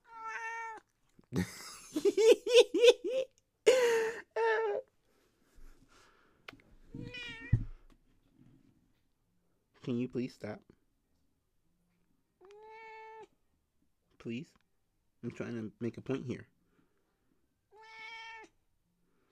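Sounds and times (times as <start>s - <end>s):
gray cat meowing loudly into microphone: 0.0s - 0.9s, 7.0s - 7.7s, 12.4s - 13.3s, 17.7s - 18.5s
speech: 1.3s - 3.2s, 9.9s - 10.8s, 14.2s - 14.6s, 15.2s - 16.6s
laughter: 1.3s - 4.0s.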